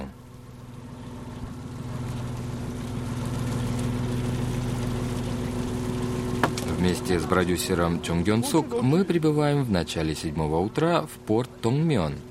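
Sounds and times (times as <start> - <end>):
fishing boat engines idling and motoring: 0.0 - 12.2
speech: 6.8 - 12.2.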